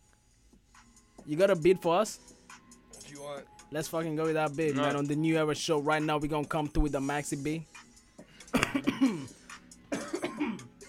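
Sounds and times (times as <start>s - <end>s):
speech: 1.2s - 2.4s, 3.3s - 7.9s
harsh throaty coughing: 8.3s - 10.8s
throat clearing: 8.5s - 9.3s, 9.9s - 10.7s.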